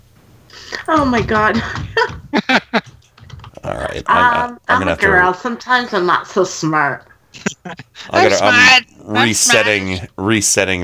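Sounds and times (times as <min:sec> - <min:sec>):
steady low hum: 0:00.0 - 0:10.8
computer keyboard clacks: 0:00.7 - 0:04.0
laughter: 0:00.7 - 0:05.2, 0:07.3 - 0:10.0
speech: 0:00.9 - 0:02.7, 0:04.0 - 0:10.8.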